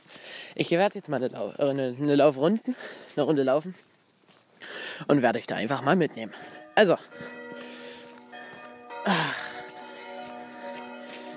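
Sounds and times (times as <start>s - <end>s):
speech: 0.6s - 3.9s, 5.0s - 7.3s, 9.0s - 9.4s
distant village church bells ringing: 5.6s - 11.3s.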